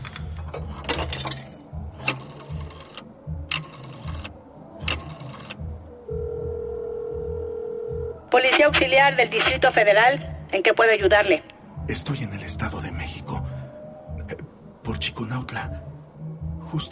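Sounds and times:
telephone ringback tone through an earpiece: 4.9 - 8.2
voices: 8.3 - 16.0
speech: 8.4 - 12.7, 15.0 - 15.9, 16.7 - 16.9.

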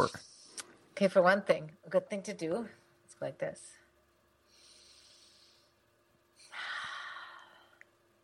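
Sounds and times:
speech: 0.0 - 0.2, 1.0 - 3.8
person sitting and breathing slowly and deeply to relax: 4.4 - 7.9.

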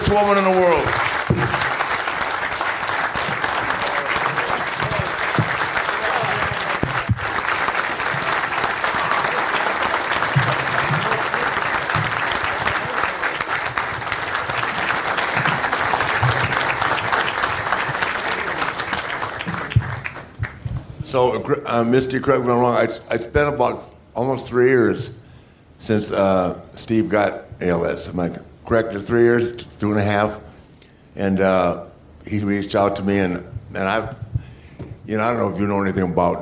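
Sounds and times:
audience applause: 0.0 - 20.9
speech: 0.1 - 1.7, 21.2 - 25.2, 25.8 - 30.4, 31.2 - 34.2, 35.1 - 36.4.

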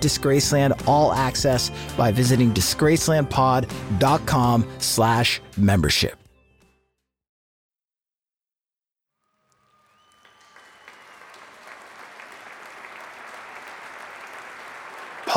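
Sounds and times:
speech: 0.0 - 6.2
large concert audience cheering and shouting: 9.5 - 15.3
whistles from a concert audience: 9.5 - 15.3
large concert audience applauding: 9.6 - 15.3.

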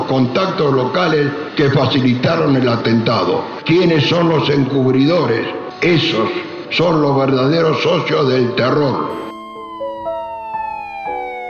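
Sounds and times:
speech: 0.1 - 9.2
commemorative siren wailing for a bombing attack: 8.0 - 11.4.

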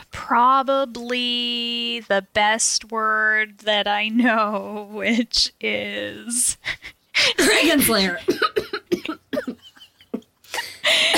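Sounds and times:
speech: 0.3 - 9.6, 10.6 - 11.1
woman giving a fake cough that sets off real coughing: 7.3 - 9.8, 10.6 - 11.1.

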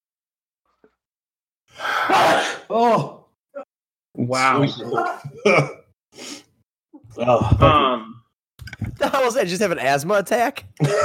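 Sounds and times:
person sneezing: 1.8 - 3.1
speech: 4.3 - 6.4, 7.2 - 8.2, 8.8 - 11.0.

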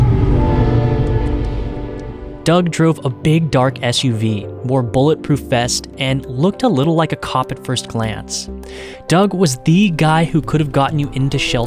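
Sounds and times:
heavy train rumbling past: 0.0 - 2.7
speech: 2.4 - 11.6.

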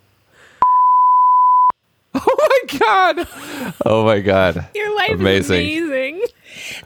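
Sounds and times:
high-pitched censor bleep: 0.6 - 1.7
speech: 2.7 - 6.8.

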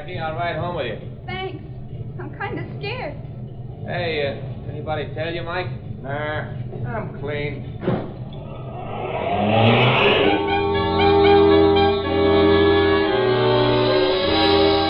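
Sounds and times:
speech: 0.0 - 1.4, 2.2 - 8.1, 9.1 - 10.2
car engine revving while driving off in a hurry: 3.9 - 14.8.

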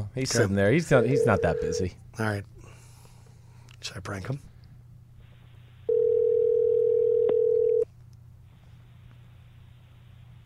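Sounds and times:
faint low hum: 0.0 - 10.4
speech: 0.2 - 2.5, 3.8 - 4.5
outgoing phone call ringing tone: 0.9 - 1.9, 5.9 - 7.9.

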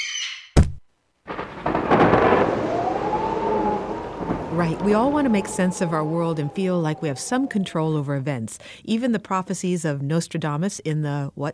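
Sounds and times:
rushing rain-like wash: 1.3 - 8.7
thunder crack: 1.3 - 9.0
storm rumbling roar: 1.3 - 10.3
speech: 4.6 - 11.5.

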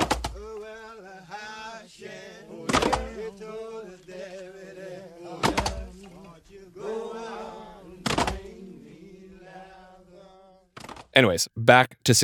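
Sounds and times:
group of men singing a slow work song in unison: 0.0 - 10.7
axe chops on logs: 2.7 - 3.1
speech: 11.2 - 12.2.

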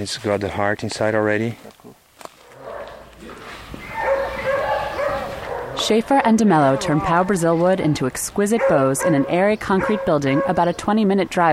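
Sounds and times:
speech: 0.0 - 1.8, 5.9 - 11.5
dogs barking outside a bow-making building: 2.4 - 7.8, 8.4 - 10.8.

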